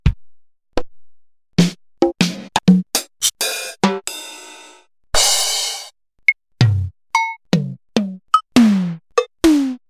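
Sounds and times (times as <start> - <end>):
Yamaha DSR 2000 drum kit samples: 1.6 - 5.9, 6.6 - 9.8.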